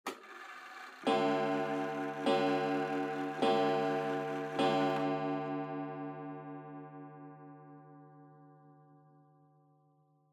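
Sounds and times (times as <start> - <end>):
long pendulum clock chime: 1.0 - 8.0.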